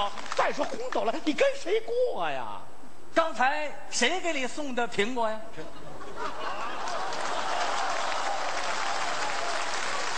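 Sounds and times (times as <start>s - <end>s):
speech: 0.0s - 6.6s
laughter: 5.6s - 9.0s
large crowd applauding: 6.5s - 10.1s.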